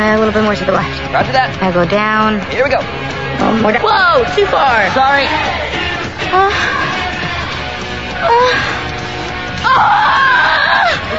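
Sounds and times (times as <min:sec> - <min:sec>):
speech: 0:00.0 - 0:07.0, 0:08.2 - 0:08.8, 0:09.7 - 0:11.1
woman screaming: 0:09.6 - 0:11.1.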